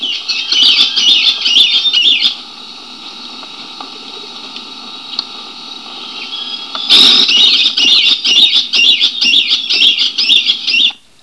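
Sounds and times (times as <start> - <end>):
Caique squawking and chattering: 0.0 - 2.4, 6.2 - 11.0.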